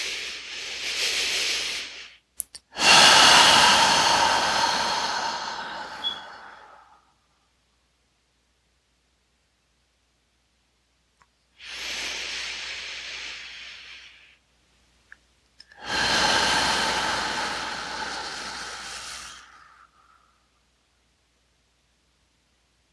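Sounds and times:
slow deep inhale during guided breathing exercise: 0.0 - 2.2, 2.8 - 7.1, 11.6 - 14.4, 15.7 - 20.6.

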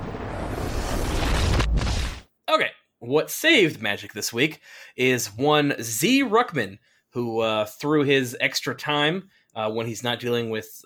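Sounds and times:
reversed explosion sound effect with rushing roar and sucking snap: 0.0 - 2.3
speech: 2.6 - 10.8.

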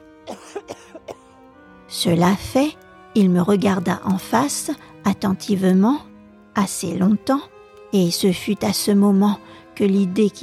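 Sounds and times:
person coughing dry throaty coughs: 0.3 - 1.2
speech: 1.9 - 10.4.

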